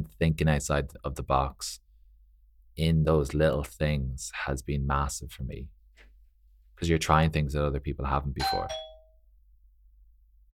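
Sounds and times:
speech: 0:00.1 - 0:01.8, 0:02.8 - 0:05.8, 0:06.8 - 0:08.8
doorbell ding at a home in Dubai: 0:08.4 - 0:09.2.

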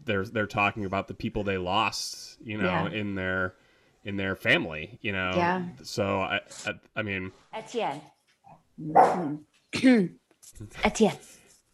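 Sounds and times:
speech: 0:00.1 - 0:08.1, 0:08.8 - 0:11.4
person imitating an angry little dog barking: 0:02.6 - 0:03.0.

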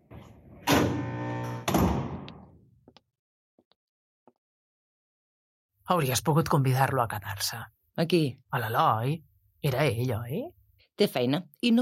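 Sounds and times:
door pushed shut with a heavy thunk: 0:00.1 - 0:02.4
speech: 0:05.9 - 0:11.8.

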